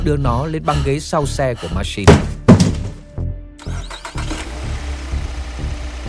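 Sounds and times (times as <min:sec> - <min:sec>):
speech: 0:00.0 - 0:02.4
car engine cranking and starting then idling: 0:03.6 - 0:06.0.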